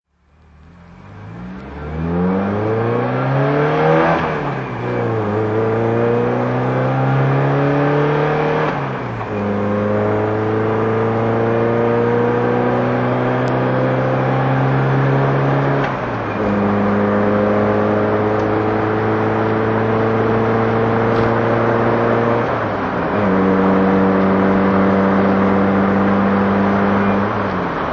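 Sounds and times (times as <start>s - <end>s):
Peugeot 504 rally car engine: 0.1s - 27.9s.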